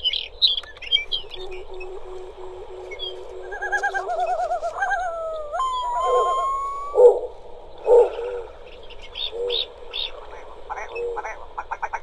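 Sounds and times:
Arctic tundra bird chirps: 0.0 - 11.4
snowy owl low hoots: 0.8 - 12.0
yellow-billed loon wailing call: 1.0 - 11.3
long-tailed duck yodeling calls: 1.1 - 7.3.

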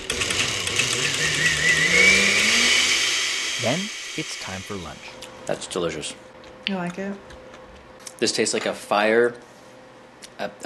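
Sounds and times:
blender motor whirring through soup: 0.0 - 5.2
speech: 3.6 - 7.4, 8.2 - 9.5, 10.4 - 10.6.

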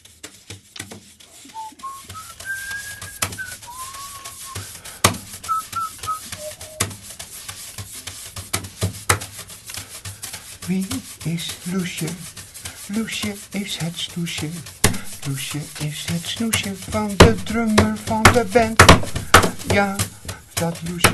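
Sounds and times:
rustling scraping texture with sharp clicks and taps: 0.0 - 21.1
person whistling a short melody: 1.4 - 4.7, 5.4 - 7.0
speech: 10.7 - 12.3, 12.9 - 21.1.

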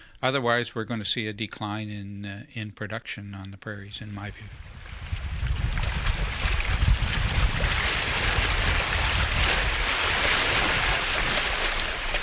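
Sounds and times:
wind on the Arctic Ocean shoreline at Tuktoyaktuk, Canada: 0.0 - 12.2
speech: 0.2 - 4.7
deep low rumble: 4.0 - 10.2
Arctic Ocean waves washing on the shoreline at Tuktoyaktuk, Canada: 4.4 - 12.2.

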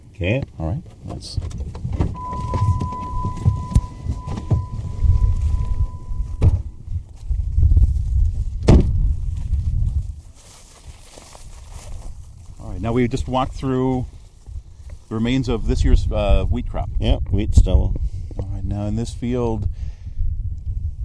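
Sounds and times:
speech: 0.2 - 2.5, 12.8 - 14.2, 15.1 - 18.1, 18.7 - 19.8
wind buffeting the microphone across open plains: 1.0 - 10.4, 11.3 - 21.0
faint thin whine: 2.2 - 6.8.

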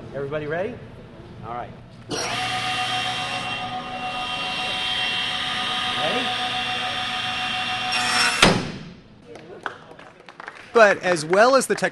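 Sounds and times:
speech: 0.1 - 2.7, 6.0 - 6.5, 10.8 - 11.9
table saw whining: 2.1 - 8.6.

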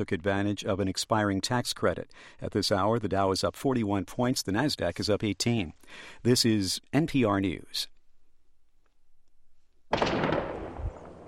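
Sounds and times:
speech: 0.0 - 7.9
loud blast: 9.9 - 11.2.

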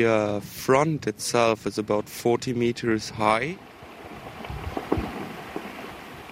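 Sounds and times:
speech: 0.0 - 3.7
steady low watery rumble: 0.0 - 6.2
glacier meltwater trickling and fizzing: 3.7 - 6.2.

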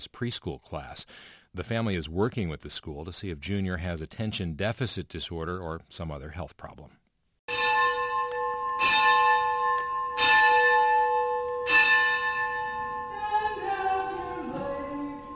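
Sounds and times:
speech: 0.0 - 7.0
church bell ringing at morning prayers in an Episcopal church in San Francisco: 7.5 - 15.3.

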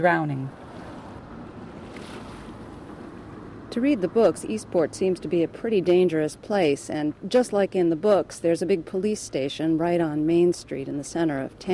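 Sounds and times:
speech: 0.0 - 0.6, 3.7 - 11.7
outboard motor boat roaring on icy water: 0.0 - 6.0.

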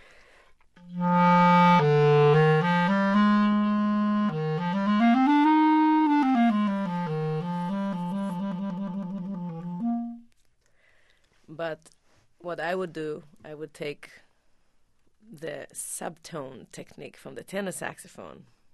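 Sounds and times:
solo clarinet playing a legato classical phrase in its lower register: 0.8 - 10.3
speech: 12.7 - 14.2, 15.4 - 18.6.

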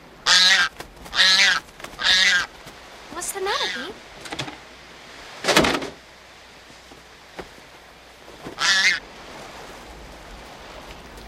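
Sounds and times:
pelican honking in a film: 0.2 - 2.6, 8.4 - 9.1.

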